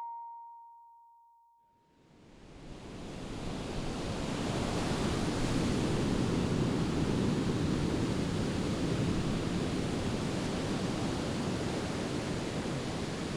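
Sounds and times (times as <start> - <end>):
Pacific Ocean surf washing on Ocean Beach in San Francisco: 2.1 - 13.3.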